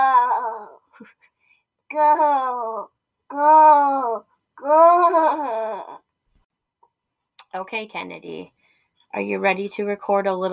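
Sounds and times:
toddler imitating a zombie moan: 0:00.0 - 0:00.8, 0:01.9 - 0:06.0
speech: 0:01.0 - 0:01.3, 0:01.9 - 0:05.9, 0:07.6 - 0:10.5.

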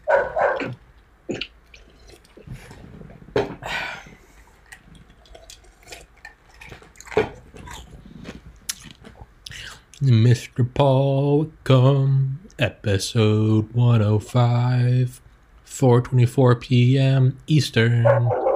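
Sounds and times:
dog barking: 0:00.0 - 0:00.8, 0:18.0 - 0:18.5
chewing-like noises: 0:00.1 - 0:03.2, 0:04.1 - 0:10.1
speech: 0:00.7 - 0:01.5, 0:10.0 - 0:15.2, 0:15.8 - 0:18.4.

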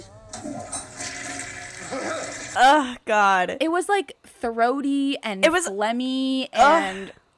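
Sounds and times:
toilet flushing: 0:00.3 - 0:02.8
speech: 0:02.6 - 0:07.2.

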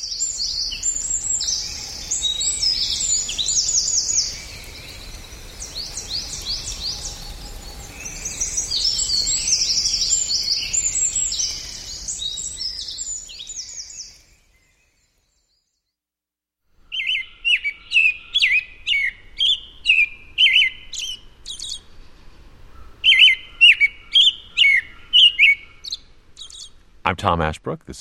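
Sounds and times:
American robin singing whistled caroling phrases outdoors: 0:00.0 - 0:15.1, 0:16.8 - 0:22.0, 0:22.7 - 0:27.9
speech: 0:27.1 - 0:27.9.

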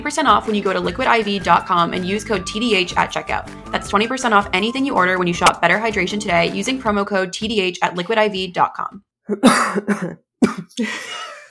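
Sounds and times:
speech: 0:00.0 - 0:11.3
harsh coughing: 0:09.3 - 0:11.5.

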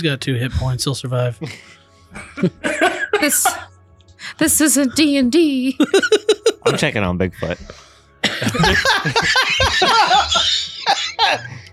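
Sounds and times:
speech: 0:00.0 - 0:03.7, 0:04.4 - 0:11.6
laughter: 0:01.4 - 0:03.7, 0:05.8 - 0:07.6, 0:08.2 - 0:11.7
person imitating a wounded man coughing up blood: 0:02.4 - 0:03.7, 0:08.2 - 0:11.6.

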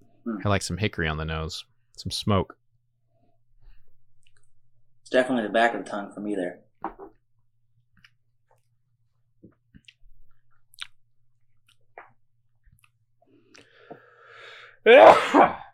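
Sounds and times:
speech: 0:00.2 - 0:02.6, 0:05.1 - 0:07.1, 0:14.8 - 0:15.6
faint drawn-in breath: 0:13.2 - 0:14.8
loud sneeze brought on by tasting a smoky whiskey: 0:14.9 - 0:15.7.

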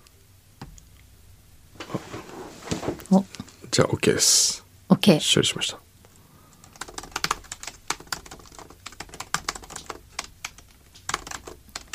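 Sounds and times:
speech: 0:03.0 - 0:05.9
typing on a computer keyboard: 0:06.5 - 0:11.9.

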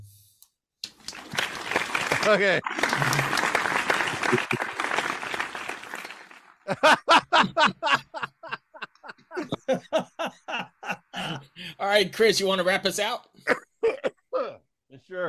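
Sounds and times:
applause from a small group: 0:00.8 - 0:06.9
laughing bursts: 0:01.8 - 0:06.0, 0:06.7 - 0:11.7, 0:13.4 - 0:14.6
speech: 0:02.3 - 0:03.2, 0:06.7 - 0:07.7, 0:11.9 - 0:13.3.

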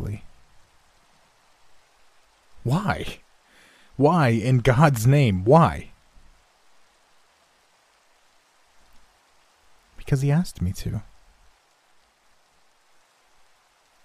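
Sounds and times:
soft steady rainfall: 0:00.0 - 0:14.0
speech: 0:02.7 - 0:03.2, 0:04.0 - 0:05.9, 0:10.1 - 0:11.1.

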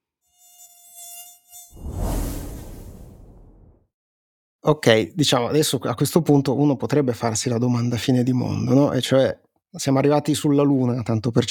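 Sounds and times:
high-pitched mosquito whine: 0:00.0 - 0:02.5
broad rushing whoosh: 0:01.7 - 0:03.8
speech: 0:04.7 - 0:11.4.

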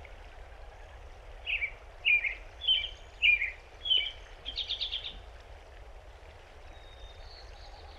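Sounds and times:
American robin singing whistled caroling phrases in Rocky Mountain National Park, Colorado: 0:01.4 - 0:05.2, 0:06.7 - 0:07.9.

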